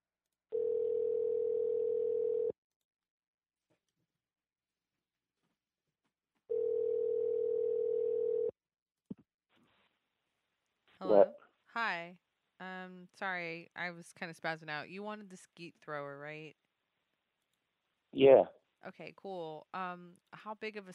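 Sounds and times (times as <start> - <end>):
steady electronic telephone tone while placing a call: 0.6 - 2.5, 6.5 - 8.5
speech: 11.0 - 11.4, 13.1 - 16.6, 18.1 - 20.9.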